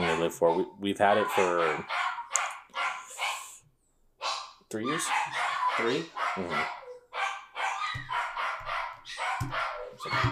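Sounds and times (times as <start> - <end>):
speech: 0.2 - 2.0, 4.7 - 6.8
dog whining and squeaking: 4.9 - 10.3.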